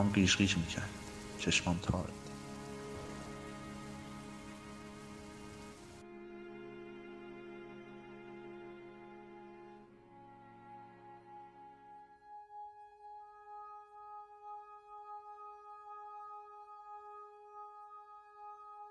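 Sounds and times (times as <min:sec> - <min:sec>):
speech: 0:00.0 - 0:02.2
heavy rain pouring down: 0:00.0 - 0:06.0
sustained droning musical tones: 0:00.0 - 0:18.8.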